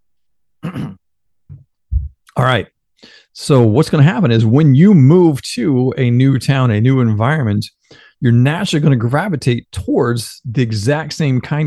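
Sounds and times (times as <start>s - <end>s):
raspy throat clearing: 0.6s - 1.6s
softer lower rumble in the throat: 1.5s - 2.2s
speech: 2.4s - 11.6s.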